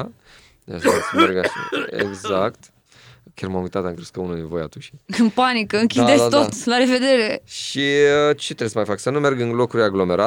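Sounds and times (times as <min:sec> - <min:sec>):
speech: 0:00.0 - 0:10.2
coughs: 0:00.8 - 0:02.5.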